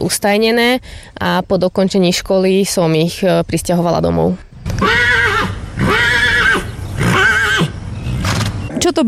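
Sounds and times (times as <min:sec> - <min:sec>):
speech: 0:00.0 - 0:05.0
horse neighing: 0:04.6 - 0:08.4.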